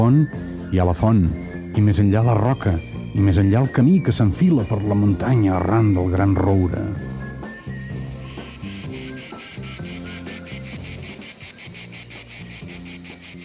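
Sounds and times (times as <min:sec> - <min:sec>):
speech: 0:00.0 - 0:07.1
soft melodic music bed: 0:00.0 - 0:13.4
crickets chirping: 0:04.7 - 0:13.4.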